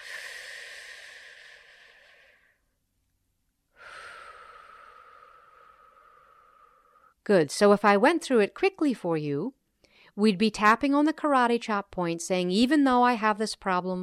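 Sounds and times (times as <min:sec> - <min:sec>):
slow deep breath closing a tapping treatment round for anxiety: 0:00.0 - 0:02.8, 0:03.7 - 0:07.2, 0:09.8 - 0:10.2
speech: 0:07.3 - 0:09.6, 0:10.2 - 0:14.0.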